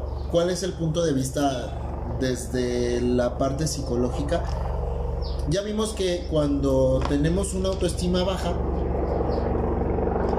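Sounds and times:
helicopter rotor chopping overhead: 0.0s - 10.3s
speech: 0.3s - 4.7s, 5.5s - 8.7s.

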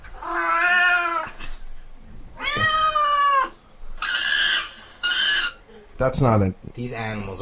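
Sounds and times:
several cats meowing and yowling: 0.2s - 1.4s, 2.4s - 5.6s
speech: 6.0s - 7.3s.

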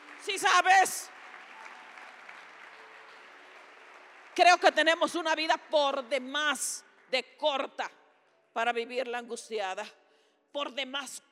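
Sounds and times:
congregation clapping at a sermon: 0.0s - 7.2s
speech: 0.2s - 1.2s, 4.4s - 11.2s.

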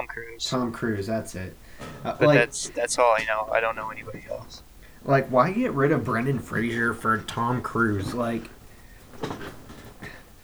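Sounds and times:
shuffling and knocking of someone settling into a chair: 0.0s - 10.4s
speech: 0.2s - 8.6s
soft thumps and rustles: 1.2s - 10.4s.

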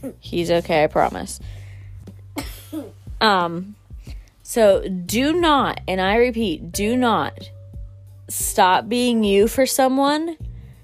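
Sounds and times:
speech: 0.0s - 1.6s, 2.4s - 3.8s, 4.5s - 7.6s, 8.3s - 10.4s
child coughing: 2.4s - 3.0s.

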